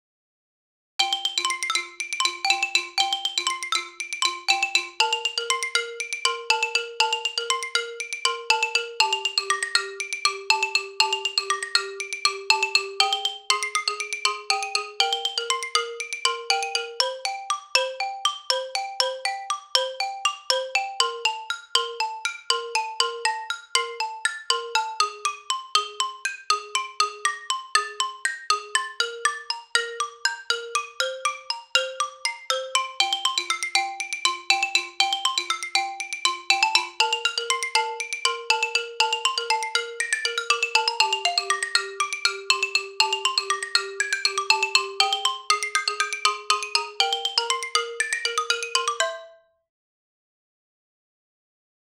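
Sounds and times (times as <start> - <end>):
woodpecker percussion: 1.0 - 49.5.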